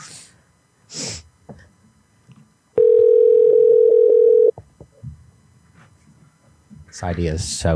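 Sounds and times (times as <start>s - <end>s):
telephone dial tone while calling a bookstore: 2.8s - 4.5s
speech: 7.0s - 7.7s.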